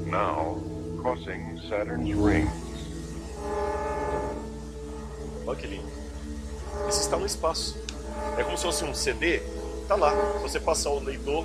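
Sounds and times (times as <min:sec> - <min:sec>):
speech: 0:00.1 - 0:02.7, 0:05.5 - 0:06.0, 0:06.8 - 0:11.4
electronic harmonica chords sonifying Saturn ring data: 0:01.9 - 0:05.9, 0:06.6 - 0:10.6.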